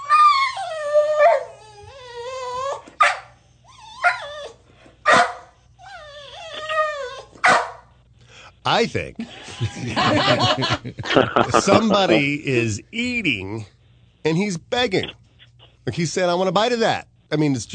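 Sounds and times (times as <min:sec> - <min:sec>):
dog howling with whiny yelps: 0:00.0 - 0:03.0, 0:05.8 - 0:07.4
dog barking sharply: 0:03.0 - 0:03.3, 0:05.0 - 0:05.6, 0:07.4 - 0:07.8
speech: 0:08.7 - 0:15.2, 0:15.9 - 0:17.7
laughter: 0:09.2 - 0:12.4.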